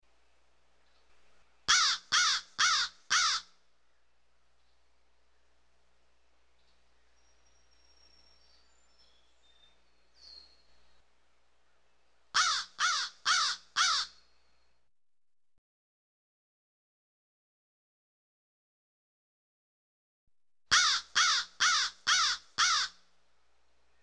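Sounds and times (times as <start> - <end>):
crows calling: 1.7 - 3.6, 12.3 - 14.2, 20.7 - 23.0.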